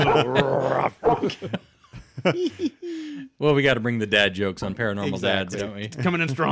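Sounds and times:
person imitating a barking dog: 0.0 - 1.2
laughter: 0.0 - 3.3
speech: 0.2 - 6.5.

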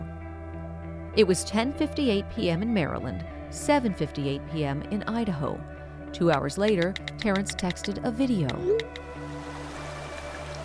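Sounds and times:
speech: 1.2 - 9.2
river water rushing over rocky bed: 9.3 - 10.6.

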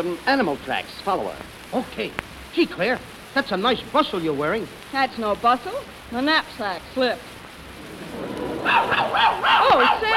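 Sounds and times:
speech: 0.0 - 7.3, 8.6 - 10.1
Airedale dog barking in excited yelping calls: 8.6 - 10.1.

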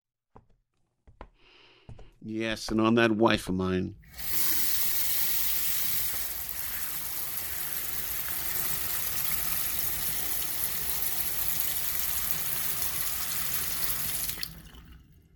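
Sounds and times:
speech: 2.2 - 4.4
water running steadily from a tap: 4.0 - 15.3.

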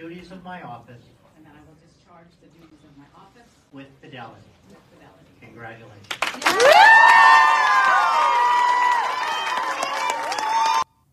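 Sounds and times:
speech: 0.2 - 1.2, 2.1 - 8.8
scattered clapping: 6.0 - 10.8
crowd cheering and whooping after a school superintendent oath in Pennsylvania: 6.4 - 10.9.

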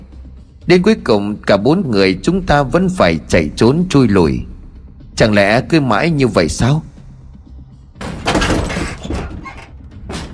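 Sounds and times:
speech: 0.7 - 4.5, 5.2 - 6.9
door being violently smashed open: 8.0 - 10.3
splintering debris clattering: 8.2 - 9.8.

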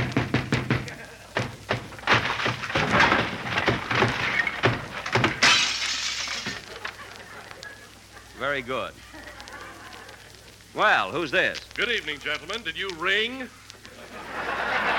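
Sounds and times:
wooden door being broken down: 0.0 - 6.7
laughter: 0.8 - 1.5, 6.4 - 10.6, 13.8 - 14.9
speech: 8.5 - 9.0, 10.8 - 13.6.

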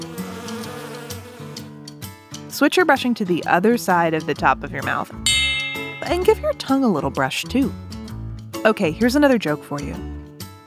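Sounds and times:
bee buzzing: 0.0 - 1.7
speech: 2.5 - 5.3, 6.0 - 7.9, 8.6 - 10.1.

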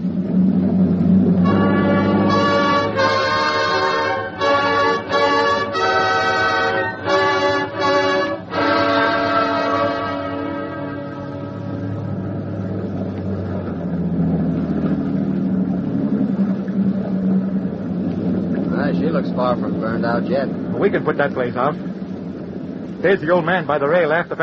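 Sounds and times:
boat engines running full ahead: 0.0 - 24.4
loud tonal horn-like blasts: 1.4 - 12.4
speech: 20.2 - 21.9, 23.0 - 24.4.

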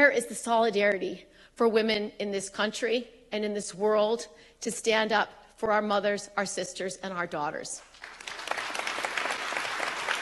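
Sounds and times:
speech: 0.0 - 7.9
crowd applauding at a gathering of Israelis: 8.0 - 10.1.

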